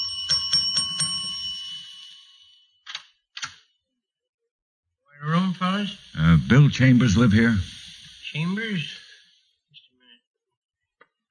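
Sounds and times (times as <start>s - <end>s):
doorbell ringing with bright metallic strikes: 0.0s - 2.8s
speech: 5.7s - 7.7s, 8.3s - 9.0s.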